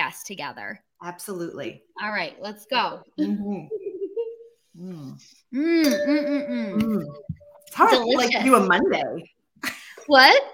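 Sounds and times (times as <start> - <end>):
speech: 0.3 - 3.9, 4.8 - 10.5
wine glasses clinking in a toast: 5.8 - 8.7.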